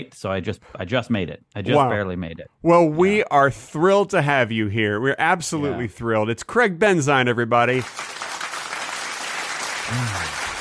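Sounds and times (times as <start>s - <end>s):
speech: 0.0s - 8.1s, 9.9s - 10.4s
crowd applauding: 7.7s - 10.6s.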